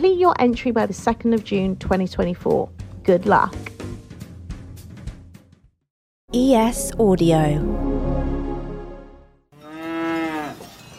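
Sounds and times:
speech: 0.0s - 3.8s, 6.3s - 8.0s
cow mooing on a mountain: 9.6s - 10.8s.

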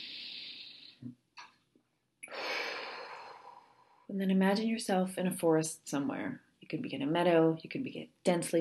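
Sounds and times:
long audible breath drawn in and released: 0.0s - 1.1s, 2.2s - 4.1s
speech: 4.1s - 8.5s.

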